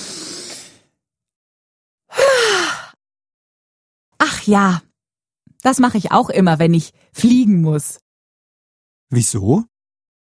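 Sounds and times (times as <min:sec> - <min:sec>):
deep breath in and out with a voiced sigh: 0:00.0 - 0:01.0
speech: 0:04.4 - 0:04.9, 0:05.6 - 0:08.0, 0:09.1 - 0:09.7.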